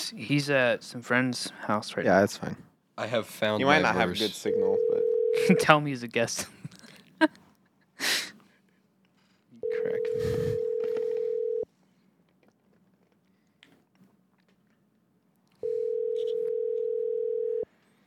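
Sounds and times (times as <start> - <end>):
speech: 0.1 - 6.6, 7.2 - 7.4, 9.8 - 10.7
telephone tones while placing a call: 4.4 - 5.7, 9.6 - 11.6, 15.6 - 17.7
faint breaths: 8.0 - 12.2
small mouth noises: 10.0 - 11.2.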